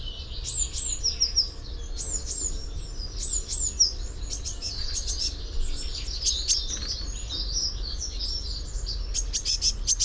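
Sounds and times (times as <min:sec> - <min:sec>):
Eurasian blue tit calling: 0:00.0 - 0:10.0
low background noise: 0:00.0 - 0:10.0.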